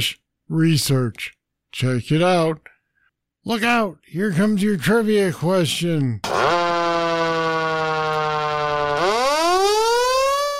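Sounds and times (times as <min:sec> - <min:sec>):
speech: 0:00.0 - 0:02.7, 0:03.4 - 0:06.3
Federal Signal Q mechanical siren wailing: 0:06.2 - 0:10.5.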